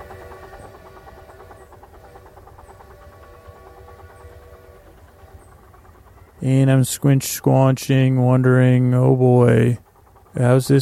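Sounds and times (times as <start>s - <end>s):
faint high-pitched squeaks of train wheels: 0.0s - 7.4s
passing train rumbling: 0.0s - 10.8s
speech: 6.4s - 9.8s, 10.4s - 10.8s.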